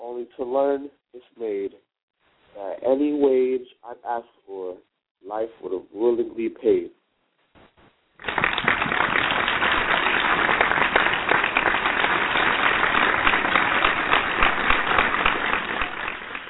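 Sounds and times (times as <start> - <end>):
speech: 0.2 - 1.9, 2.6 - 7.0
audience applause: 8.2 - 16.4.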